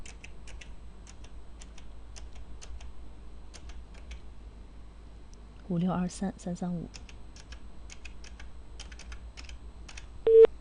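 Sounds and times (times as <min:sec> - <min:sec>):
speech: 0:05.7 - 0:07.1
telephone ringing tone as a call goes through: 0:10.3 - 0:10.5.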